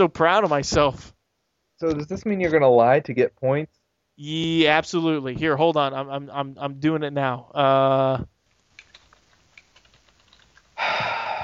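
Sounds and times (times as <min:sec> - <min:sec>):
speech: 0:00.0 - 0:01.2, 0:01.8 - 0:08.3
fast typing on a computer keyboard: 0:08.8 - 0:10.5.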